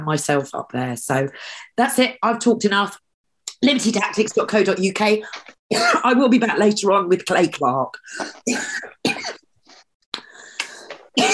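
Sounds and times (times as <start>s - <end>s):
speech: 0.0s - 3.0s, 3.6s - 9.4s
person hacking coughs: 5.7s - 6.1s, 8.4s - 9.5s.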